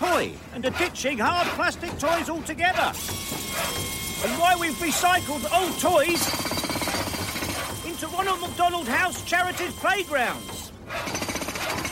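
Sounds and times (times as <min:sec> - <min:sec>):
speech: 0:00.2 - 0:06.6, 0:08.2 - 0:11.2
jackhammer pounding during construction work while a playground is being built: 0:03.0 - 0:11.9.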